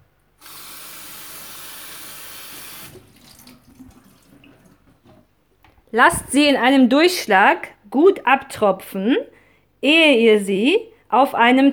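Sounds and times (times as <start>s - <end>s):
tap running: 0.4s - 6.4s
lettuce leaves washed by hand in a bowl of cold water: 2.9s - 5.2s
speech: 5.9s - 11.7s.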